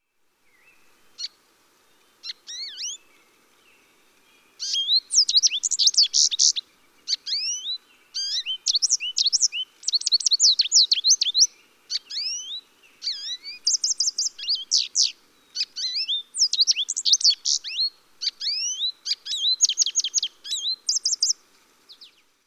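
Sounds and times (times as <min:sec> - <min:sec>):
American Goldfinch: 0:04.6 - 0:22.1.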